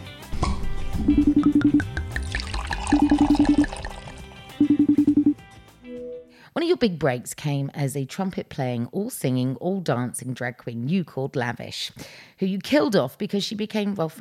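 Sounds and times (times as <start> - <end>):
wine bottle glugging: 1.2 - 5.2
wine pouring into a glass: 1.7 - 4.7
wine splashing in a glass: 1.8 - 4.4
speech: 6.7 - 14.2.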